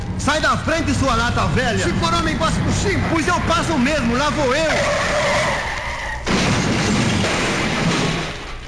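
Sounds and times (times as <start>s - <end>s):
car crashing into another car: 0.2s - 8.6s
car tires screeching in a skid: 0.3s - 6.3s
speech: 0.5s - 5.5s.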